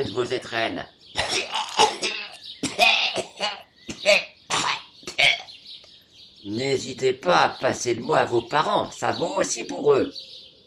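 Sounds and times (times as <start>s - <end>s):
speech: 0.0s - 1.6s, 3.4s - 4.3s, 6.4s - 10.3s
person coughing hard: 1.2s - 5.5s
rough throat-clearing: 1.2s - 5.6s.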